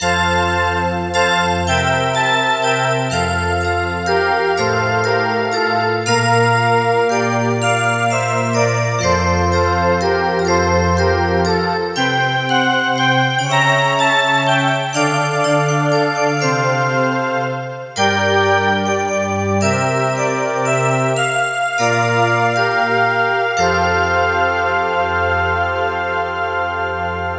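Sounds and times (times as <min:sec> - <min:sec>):
Christmas bell synth pad: 0:00.0 - 0:27.2.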